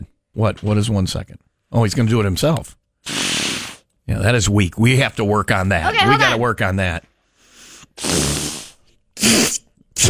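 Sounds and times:
speech: 0.4s - 3.2s, 4.1s - 7.1s, 8.0s - 8.3s
fart noises made with cupped hands: 8.0s - 10.0s.

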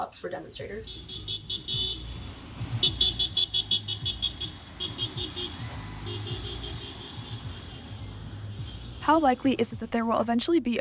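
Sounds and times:
speech: 0.0s - 1.8s, 2.8s - 3.5s, 9.0s - 10.7s
steady traffic rumble: 0.0s - 10.7s
car horn honking: 1.0s - 9.3s.

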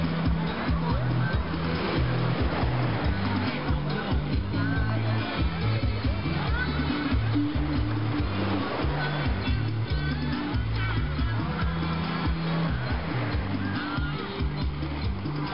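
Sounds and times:
bass line stepping through low notes: 0.0s - 15.5s
ocean surf: 0.0s - 15.5s
male voice singing in a seaside bar: 3.1s - 14.9s.

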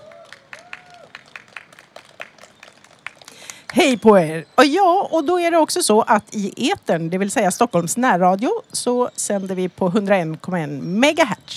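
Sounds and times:
whistle-like cheer: 0.0s - 3.3s
small live audience clapping: 0.0s - 4.1s
voices calling out: 0.0s - 11.5s
speech: 3.7s - 11.5s.

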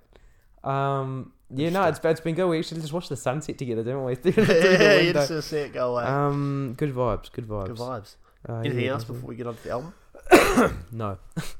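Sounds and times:
speech: 0.6s - 10.0s, 10.6s - 11.5s
laughter: 4.3s - 6.0s
throat clearing: 10.2s - 11.5s.

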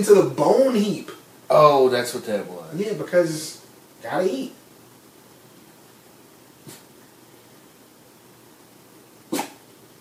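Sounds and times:
speech: 0.0s - 4.6s
quiet hiss: 0.0s - 9.9s
person sneezing: 9.3s - 9.6s.

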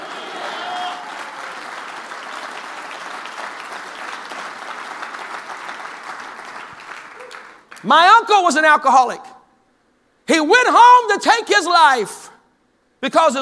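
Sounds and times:
audience cheering and shouting: 0.0s - 1.6s
large crowd applauding: 0.0s - 7.9s
speech: 7.8s - 9.3s, 10.3s - 12.2s, 13.0s - 13.3s.

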